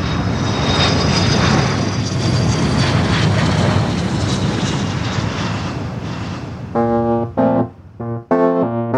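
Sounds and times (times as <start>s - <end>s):
airplane engine roaring in flight through a cabin: 0.0s - 8.8s
short harmonic electronic chime: 6.8s - 8.8s.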